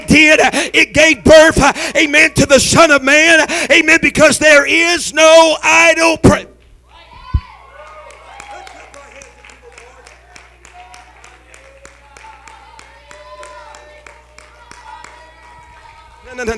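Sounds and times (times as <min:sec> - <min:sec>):
speech: 0:00.1 - 0:06.5, 0:16.4 - 0:16.5
audience rhythmic hand clapping: 0:07.8 - 0:16.4.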